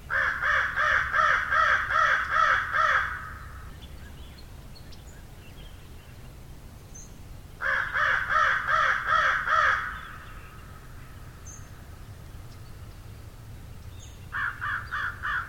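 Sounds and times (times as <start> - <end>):
crow cawing harshly: 0.1 - 3.7, 7.6 - 10.9, 14.3 - 15.4.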